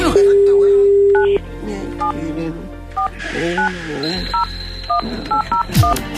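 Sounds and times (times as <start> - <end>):
brief steady telephone tone: 0.1 - 1.5, 3.0 - 6.0
electronic telephone keypad dialing beeps: 0.3 - 1.4, 3.0 - 6.0.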